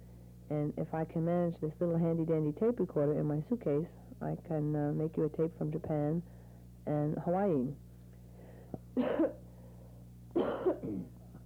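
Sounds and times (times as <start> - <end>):
low steady hum: 0.0 - 11.4
speech: 0.5 - 7.8, 9.0 - 9.4, 10.4 - 11.2
raspy coughs: 9.0 - 9.5, 10.3 - 11.2.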